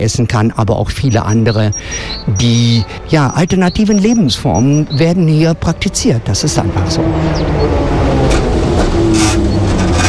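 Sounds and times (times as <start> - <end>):
speech: 0.0 - 8.2
continuous low street noise: 0.0 - 10.0
trams rattling along a busy shopping street in Bremen Germany: 0.0 - 10.0.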